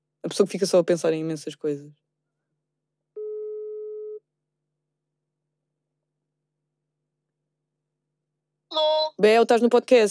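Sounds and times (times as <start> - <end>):
speech: 0.3 - 2.0, 9.2 - 10.1
telephone ringback tone while a call is being placed: 3.2 - 4.2.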